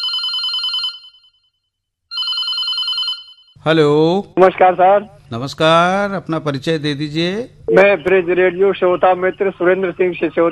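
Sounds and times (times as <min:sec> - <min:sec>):
telephone ringing with an electronic trilling tone: 0:00.0 - 0:03.6
speech: 0:03.6 - 0:10.5.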